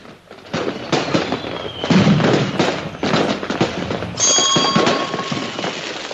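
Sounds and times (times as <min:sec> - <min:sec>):
fireworks crackling and popping: 0:00.0 - 0:06.1
whistling ringing tone: 0:01.3 - 0:02.6, 0:04.2 - 0:06.0.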